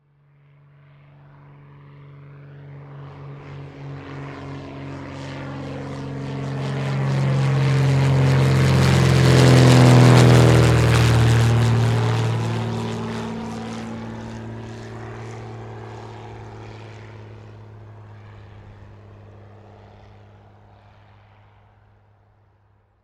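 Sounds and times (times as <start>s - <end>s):
propeller airplane: 0.0s - 23.0s.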